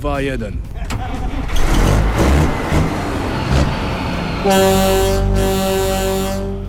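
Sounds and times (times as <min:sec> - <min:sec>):
speech: 0:00.0 - 0:01.8, 0:04.4 - 0:05.7
Kenworth W900 truck engine roaring and revving: 0:00.7 - 0:06.6
powerful sustained truck air horn blast: 0:04.4 - 0:06.6.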